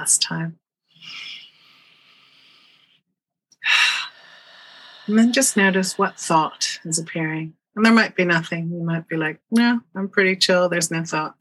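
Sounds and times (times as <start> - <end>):
speech: 0.0 - 1.3, 5.1 - 11.3
slow guided breathing in through the nose and out through the mouth: 0.9 - 6.9.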